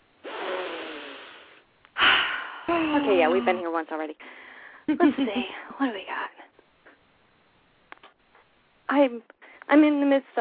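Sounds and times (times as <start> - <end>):
person sniffing: 0.2 - 3.3
sharp forceful puff of breath: 0.2 - 3.3
speech: 3.0 - 6.4, 8.9 - 10.3.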